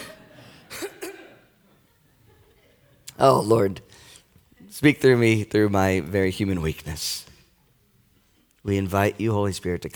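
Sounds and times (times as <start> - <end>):
quick breathy coughs: 0.0 - 1.4
speech: 3.2 - 3.9, 4.7 - 7.3, 8.6 - 9.9.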